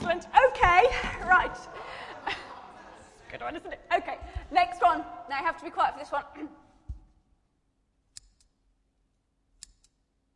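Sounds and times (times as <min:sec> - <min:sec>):
laughter: 0:00.8 - 0:03.8
speech: 0:03.5 - 0:06.6
pair of scissors cutting: 0:09.6 - 0:10.0.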